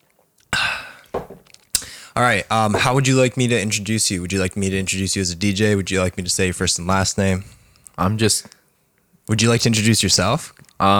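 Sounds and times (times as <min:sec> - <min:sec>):
person sipping coffee or water: 0:00.1 - 0:02.1
speech: 0:02.2 - 0:08.6, 0:09.3 - 0:10.9.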